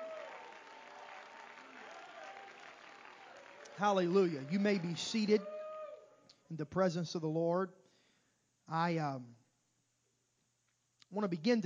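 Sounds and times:
audience at a worship service clapping in praise: 0.0s - 5.4s
speech: 3.8s - 5.6s, 6.5s - 7.8s, 8.7s - 9.4s, 11.1s - 11.6s.

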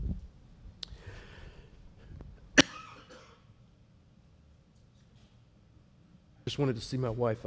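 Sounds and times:
faint breathing: 0.9s - 2.2s
sharp explosive sneeze: 2.6s - 3.5s
speech: 6.5s - 7.4s.

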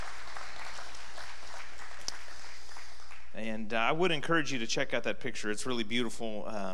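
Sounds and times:
audience applause: 0.0s - 3.3s
speech: 3.4s - 6.7s.

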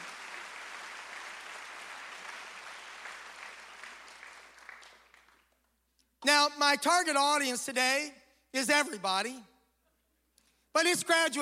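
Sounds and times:
church congregation applauding on a graduation Sunday: 0.0s - 5.8s
speech: 6.2s - 9.5s, 10.8s - 11.3s.

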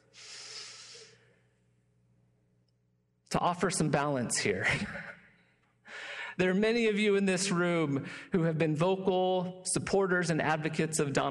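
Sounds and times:
deep breath: 0.0s - 1.5s, 5.8s - 6.4s
speech: 3.3s - 5.2s, 6.4s - 11.3s.

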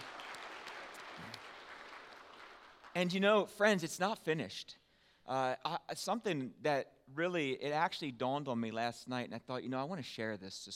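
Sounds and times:
audience applauding community ministry volunteers: 0.0s - 3.2s
speech: 3.0s - 10.7s.

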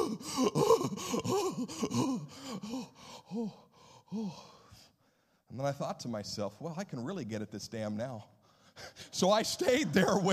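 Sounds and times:
person gasping after a cold water plunge: 0.0s - 5.4s
speech: 5.5s - 10.3s.

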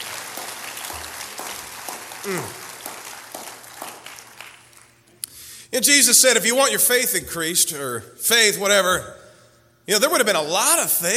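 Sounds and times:
church audience clapping hands: 0.0s - 5.1s
speech: 2.2s - 2.6s, 5.7s - 9.2s, 9.9s - 11.1s
vocal exclamation: 2.2s - 2.6s.

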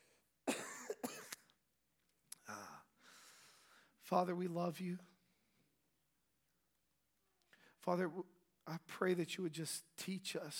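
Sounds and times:
harsh cough: 0.5s - 1.5s
throat-clearing cough: 0.5s - 1.5s
speech: 4.1s - 5.1s, 7.9s - 10.5s.

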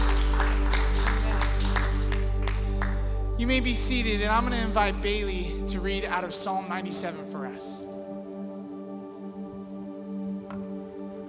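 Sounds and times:
group clapping in rhythm: 0.0s - 3.3s
low musical drone: 0.0s - 11.2s
sung worship song of praise: 0.0s - 11.2s
speech: 3.4s - 7.9s.

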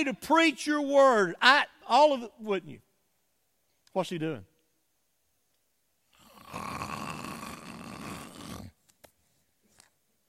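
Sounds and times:
speech: 0.0s - 2.9s, 3.9s - 4.5s
voice imitating loud rasping snoring: 6.1s - 8.8s.

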